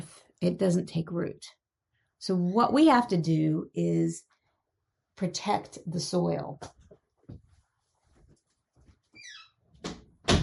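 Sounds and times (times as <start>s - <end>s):
speech: 0.4s - 1.6s, 2.2s - 4.3s, 5.2s - 7.4s
faint shuffling and rustling: 6.7s - 9.2s
door swinging shut with a squeak and thuds: 9.2s - 10.4s.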